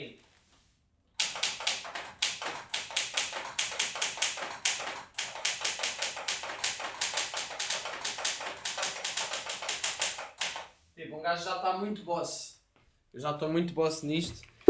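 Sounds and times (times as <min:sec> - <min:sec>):
mechanical typewriter keys clattering: 0:01.2 - 0:10.7
speech: 0:11.3 - 0:12.5, 0:13.2 - 0:14.5.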